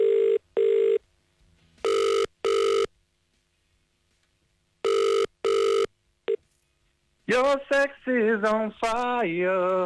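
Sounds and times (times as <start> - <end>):
double-pulse ringback tone of an outgoing phone call: 0.0 - 1.0, 1.8 - 2.9, 4.8 - 6.4
speech: 7.3 - 9.8.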